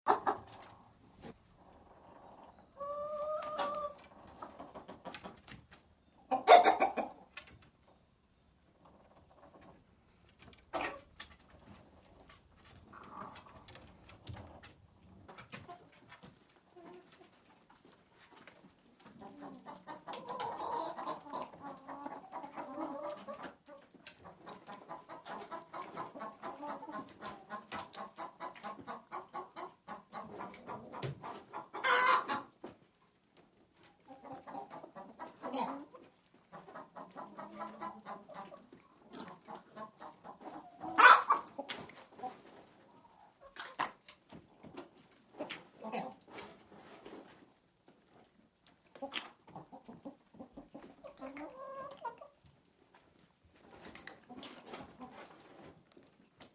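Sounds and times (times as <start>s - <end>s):
chickens in a hen house interior: 0.1s - 56.5s.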